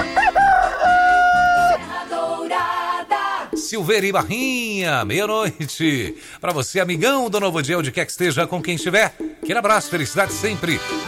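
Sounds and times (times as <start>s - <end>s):
rooster crowing: 0.0s - 1.9s
busy musical backing: 0.0s - 11.0s
speech: 3.7s - 11.0s.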